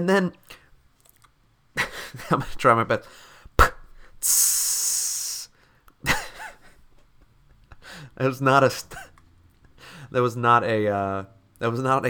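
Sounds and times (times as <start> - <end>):
speech: 0.0 - 0.6, 2.1 - 3.3, 4.2 - 5.0, 8.2 - 9.1, 10.1 - 12.0
Coca-Cola fizzing hiss: 4.2 - 5.5.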